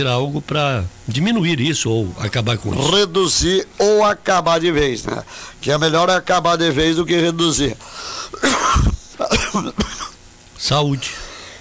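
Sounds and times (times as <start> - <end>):
speech: 0.0 - 8.9, 9.6 - 10.0, 10.6 - 11.2
man coughing in harsh bursts: 8.2 - 10.2
man clearing his throat: 8.3 - 10.2.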